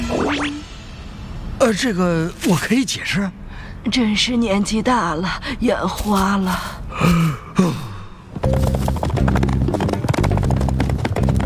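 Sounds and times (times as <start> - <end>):
speech: 0.3 - 0.7, 1.6 - 7.8
galloping hooves of a toy horse in a cartoon: 8.3 - 11.4.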